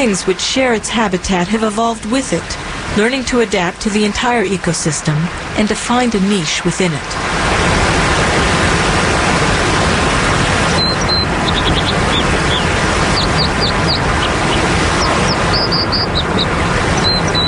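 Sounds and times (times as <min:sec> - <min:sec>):
speech: 0:00.0 - 0:07.6
steady roar of rushing water from a waterfall: 0:00.0 - 0:17.4
small bird's high sharp chirps: 0:10.7 - 0:17.4.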